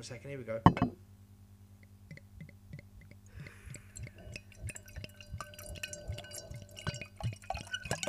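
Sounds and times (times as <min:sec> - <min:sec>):
speech: 0:00.0 - 0:01.0
Barbaresco red wine glugging from a bottle into a glass: 0:02.1 - 0:08.0.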